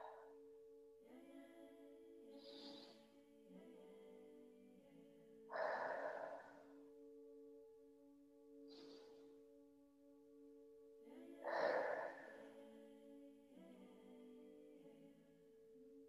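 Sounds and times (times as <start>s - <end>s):
soft sustained ambient music drone: 0.0s - 16.0s
slow breaths in through the nose and out through the mouth during a breathing exercise: 5.5s - 7.0s, 11.4s - 12.6s.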